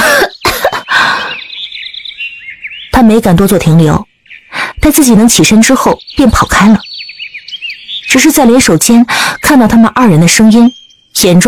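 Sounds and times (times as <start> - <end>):
woman coughing hard while clutching her neck: 0.0 - 0.9
speech: 3.1 - 4.1, 4.8 - 7.0, 8.1 - 11.4.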